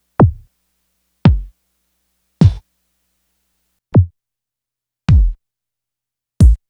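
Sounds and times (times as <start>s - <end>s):
kick drum hits: 0.2s - 0.4s, 1.3s - 1.5s, 5.1s - 5.4s, 6.4s - 6.6s.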